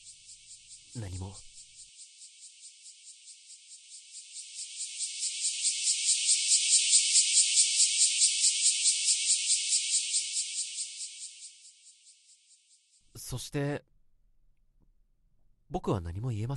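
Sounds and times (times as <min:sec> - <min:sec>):
cicadas droning: 0:00.0 - 0:13.1
speech: 0:01.0 - 0:01.5, 0:13.3 - 0:13.9, 0:15.7 - 0:16.5.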